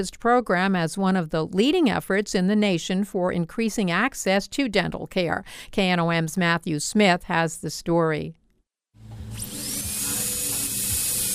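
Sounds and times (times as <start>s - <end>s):
speech: 0.0s - 8.4s
dentist's drill whining while prepping a tooth: 9.0s - 11.3s.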